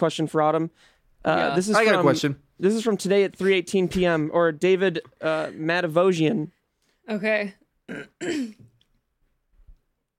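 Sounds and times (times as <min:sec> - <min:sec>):
speech: 0:00.0 - 0:08.7
person clearing throat: 0:07.9 - 0:08.8.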